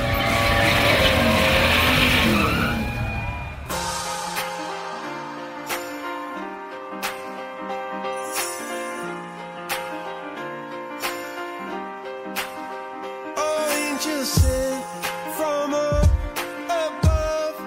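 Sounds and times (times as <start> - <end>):
car engines starting and revving: 0.0 - 3.7
steady melodic backing music with sharp beats: 3.6 - 17.6.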